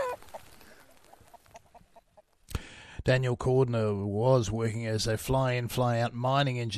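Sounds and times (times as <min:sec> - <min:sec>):
Summerlad chickens clucking: 0:00.0 - 0:02.4
speech: 0:03.1 - 0:06.7.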